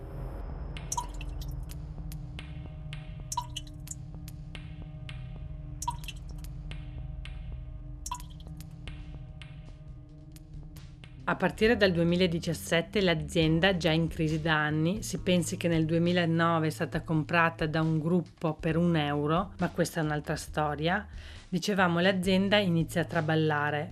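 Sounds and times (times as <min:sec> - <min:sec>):
water dripping from a tap: 0:00.8 - 0:02.2, 0:03.2 - 0:04.4, 0:05.8 - 0:06.8, 0:08.0 - 0:09.0
speech: 0:11.3 - 0:23.8.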